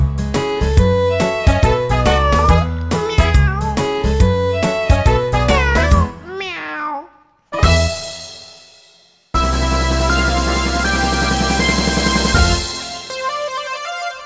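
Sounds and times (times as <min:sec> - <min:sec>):
bright bouncy keyboard music: 0:00.0 - 0:06.3, 0:07.6 - 0:08.3, 0:09.4 - 0:14.2
drawn-out meow-like gliding tones: 0:02.0 - 0:03.9, 0:05.5 - 0:07.0.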